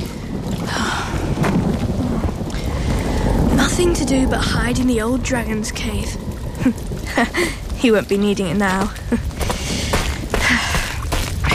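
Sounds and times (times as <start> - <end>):
deep low rumble: 0.0 - 11.5
steady heavy rain pouring down: 0.0 - 11.5
speech: 3.8 - 9.3.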